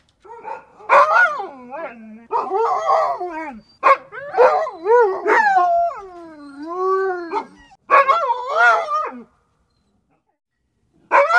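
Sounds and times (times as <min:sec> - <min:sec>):
dog yowling: 0:00.3 - 0:09.2.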